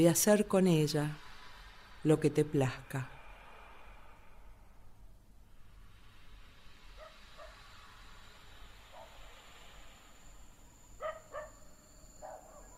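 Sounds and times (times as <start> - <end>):
speech: 0.0 - 1.2, 2.0 - 3.2
steady low rumble of outdoor noise: 0.0 - 12.7
dogs barking at night: 11.0 - 12.7.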